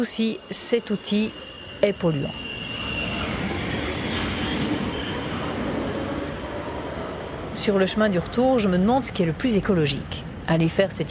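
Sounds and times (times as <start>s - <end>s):
speech: 0.0s - 2.5s, 7.6s - 11.1s
faint metallic squeal of metro train: 0.0s - 5.8s
electric metro train rumbling on rails: 0.0s - 11.1s.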